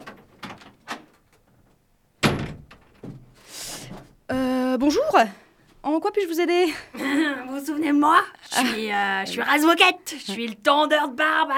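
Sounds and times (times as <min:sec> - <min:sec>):
door handle clicks and rattles: 0:00.0 - 0:03.1
wooden door knock as it swings: 0:02.2 - 0:03.3
speech: 0:04.8 - 0:11.5.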